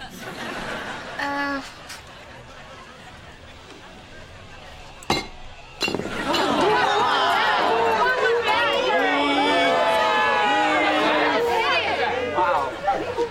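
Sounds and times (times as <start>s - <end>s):
crowd of people chattering and laughing at a party: 0.0s - 13.2s
juice glass clinking: 5.0s - 6.7s.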